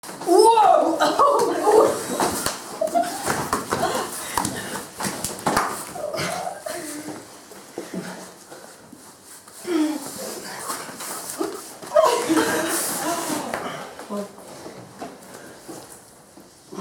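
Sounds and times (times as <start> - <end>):
women wrestling: 0.1 - 8.3, 9.6 - 14.3.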